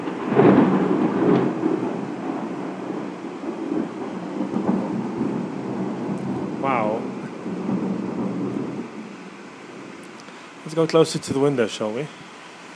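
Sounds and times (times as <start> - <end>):
deep rolling thunder: 0.0 - 11.5
rain: 0.0 - 12.7
person exclaiming: 6.6 - 7.0
speech: 10.8 - 12.2.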